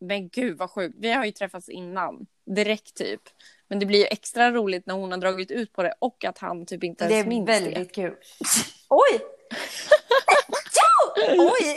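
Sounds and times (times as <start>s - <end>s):
people chatting in the room: 0.0s - 11.7s
speech: 0.0s - 11.7s
person sneezing: 8.4s - 8.9s
people laughing in the room: 9.6s - 11.7s.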